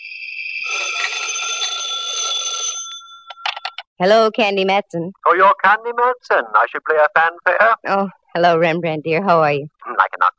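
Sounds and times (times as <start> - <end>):
old-fashioned telephone bell ringing: 0.0 - 3.8
speech: 0.6 - 1.4, 4.0 - 10.3.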